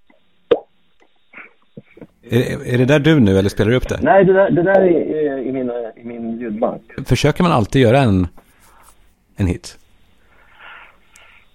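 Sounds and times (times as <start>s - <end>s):
cheek flick popping with O-shaped mouth: 0.0s - 1.2s
speech: 2.3s - 8.4s, 9.4s - 9.8s.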